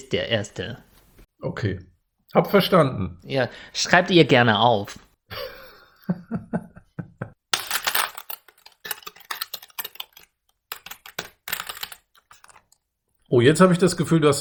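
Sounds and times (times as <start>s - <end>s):
speech: 0.0s - 6.5s, 13.3s - 14.3s
laughter: 5.3s - 7.4s
typing on a computer keyboard: 8.0s - 12.8s.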